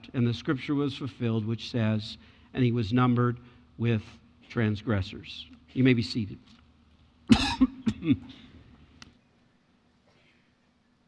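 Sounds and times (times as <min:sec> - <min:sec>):
speech: 0:00.0 - 0:06.6, 0:07.3 - 0:08.4
harsh coughs: 0:07.3 - 0:08.5
throat clearing: 0:07.3 - 0:08.6.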